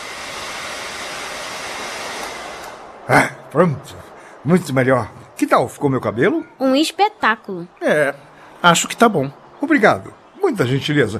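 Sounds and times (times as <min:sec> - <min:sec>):
hair dryer blowing: 0:00.0 - 0:03.0
speech: 0:03.1 - 0:11.1.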